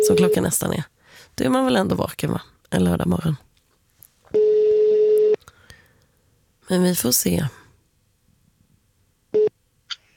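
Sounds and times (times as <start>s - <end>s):
telephone call tone on an unanswered call: 0.0s - 0.4s, 4.4s - 5.4s
speech: 0.1s - 3.5s, 6.7s - 7.6s.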